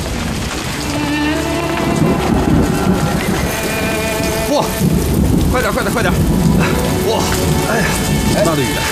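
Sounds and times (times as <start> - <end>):
heavy rain with deep rumbling: 0.0 - 8.9.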